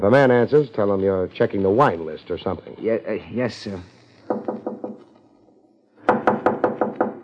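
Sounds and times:
speech: 0:00.0 - 0:04.0
knocking on a door: 0:04.3 - 0:05.0, 0:06.1 - 0:07.2.

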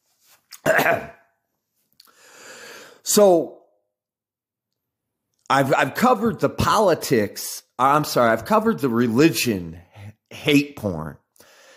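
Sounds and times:
harsh rough cough: 0:00.6 - 0:01.3
speech: 0:00.7 - 0:01.1, 0:03.1 - 0:03.6, 0:05.5 - 0:11.2.

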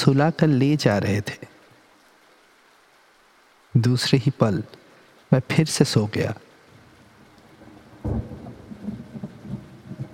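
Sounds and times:
speech: 0:00.0 - 0:01.5, 0:03.8 - 0:06.5
steady rain with a low rumbling undertone: 0:00.0 - 0:10.1
soft irregular low booms: 0:07.5 - 0:10.1
sharp thunder-like thump: 0:07.6 - 0:10.1.

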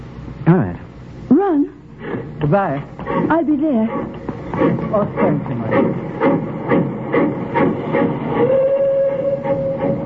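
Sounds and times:
train pulling away from station chuffing: 0:02.0 - 0:10.0
speech: 0:02.5 - 0:06.0
sustained high whistle-like tone: 0:08.3 - 0:10.0.

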